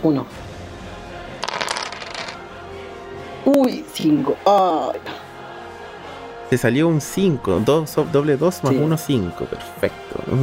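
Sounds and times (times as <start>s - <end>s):
speech: 0.0s - 0.5s, 3.4s - 5.3s, 6.5s - 10.4s
two six-sided dice rolled across a hard surface for a tabletop game: 1.4s - 2.4s.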